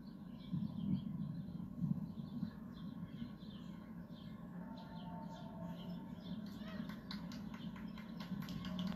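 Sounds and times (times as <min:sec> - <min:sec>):
birds chirping outdoors at Central Park West: 0:00.0 - 0:08.9
low rumble of city ambience: 0:00.0 - 0:08.9
faint voices: 0:02.5 - 0:08.9.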